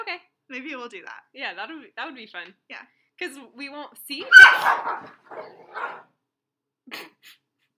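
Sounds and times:
speech: 0.1 - 6.1, 6.9 - 7.4
dogs barking and snarling while fighting: 4.3 - 6.1.

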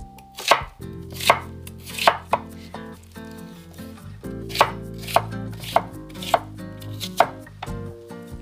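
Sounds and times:
faint tonal sound: 0.0 - 8.4
knife slicing a halved onion on a cutting board: 0.4 - 2.6, 4.5 - 7.8.

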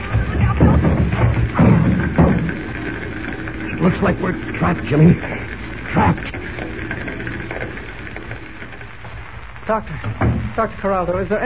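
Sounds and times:
dense rough noise: 0.0 - 11.4
heavy dull thuds of a door being forced in inside a burning building: 0.2 - 2.7, 10.0 - 10.6
speech: 3.9 - 6.7, 9.7 - 11.4.

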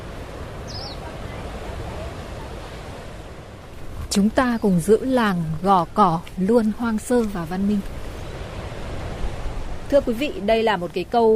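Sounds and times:
seaside surf at Gò Cỏ village: 0.0 - 11.3
seaside wind at Gò Cỏ village: 0.0 - 11.3
speech: 4.2 - 8.0, 9.9 - 11.3.

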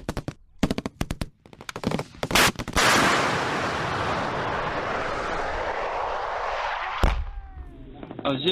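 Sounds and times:
bombs dropping and exploding during combat in Ramadi, Iraq: 2.0 - 8.2.

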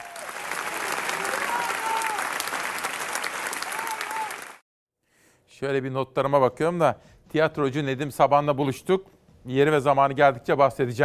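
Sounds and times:
faint cheers or whistles from audience: 0.0 - 4.6
large audience standing ovation at end of concert in Spain: 0.0 - 4.6
speech: 5.6 - 11.0.

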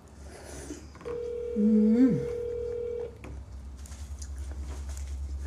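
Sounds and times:
outgoing phone call ringing tone: 1.0 - 3.2
speech: 1.6 - 2.3.

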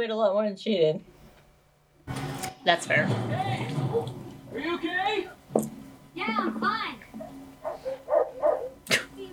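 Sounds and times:
speech: 0.0 - 1.1, 2.1 - 5.4, 6.2 - 7.0
puppy barking: 7.2 - 8.8.

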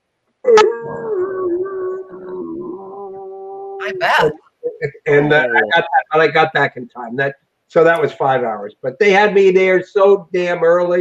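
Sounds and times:
speech: 0.4 - 1.2, 3.9 - 11.0
human voice imitating a dog howling: 0.4 - 4.8.

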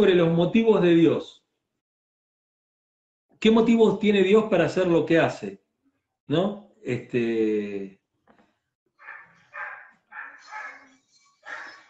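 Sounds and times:
speech: 0.0 - 1.4, 3.4 - 5.6, 6.3 - 8.0
several dogs barking: 9.0 - 11.8.

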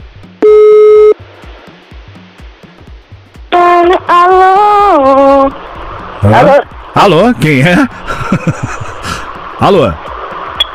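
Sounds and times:
faint rhythmic background: 0.0 - 10.7
ringback tone of an outgoing phone call being dialed: 0.4 - 1.2
speech: 6.3 - 10.2
laughter: 7.9 - 9.3.

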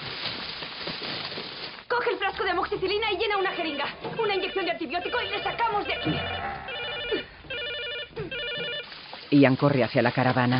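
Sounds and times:
speech: 2.0 - 7.3, 9.3 - 10.5
telephone ringing inside a caravan: 3.3 - 8.9.

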